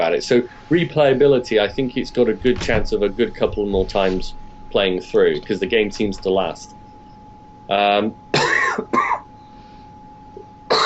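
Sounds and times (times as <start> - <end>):
speech: 0.0 - 6.8, 7.7 - 8.2, 8.8 - 9.2
faint steady hum: 0.0 - 10.8
person coughing: 8.3 - 9.3, 10.7 - 10.8
throat clearing: 8.4 - 9.3.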